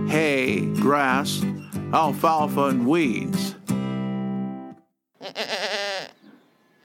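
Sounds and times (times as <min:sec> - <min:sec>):
speech: 0:00.2 - 0:03.4
male goat bleating: 0:05.2 - 0:06.3.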